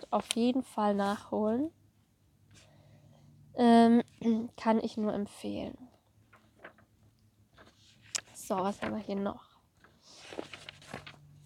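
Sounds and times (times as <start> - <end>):
paper pages being leafed through: 0.0 - 1.2, 6.3 - 6.9, 7.5 - 11.4
speech: 0.1 - 1.8, 3.6 - 5.9, 8.5 - 9.5.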